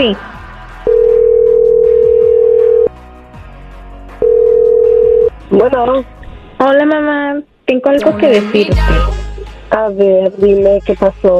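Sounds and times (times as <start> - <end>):
speech: 0.0 - 0.3, 5.6 - 11.3
soft music: 0.0 - 11.3
telephone ringback tone: 0.9 - 2.9, 4.2 - 5.3.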